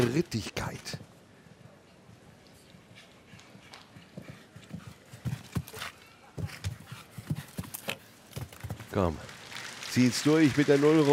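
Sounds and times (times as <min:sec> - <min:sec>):
speech: 0:00.0 - 0:01.0, 0:09.0 - 0:09.3, 0:10.0 - 0:11.1
galloping horse hoofbeats thudding on soft ground in a show jumping arena: 0:03.3 - 0:09.3.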